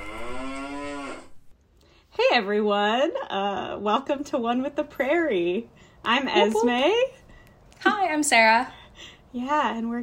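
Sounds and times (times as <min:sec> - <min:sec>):
cow mooing: 0:00.0 - 0:01.5
speech: 0:02.4 - 0:07.2, 0:07.8 - 0:10.0.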